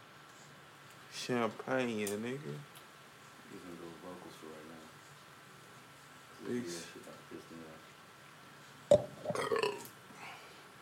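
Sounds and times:
speech: 1.3 - 2.7, 6.4 - 7.9
abrupt gulp: 8.9 - 9.8
loud croaky burp after drinking beer: 8.9 - 9.9.

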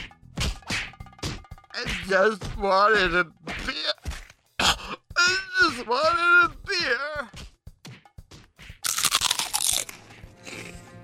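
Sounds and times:
speech: 1.8 - 4.0, 5.8 - 7.3
crunchy crispy black legumes being chewed: 8.8 - 11.0.

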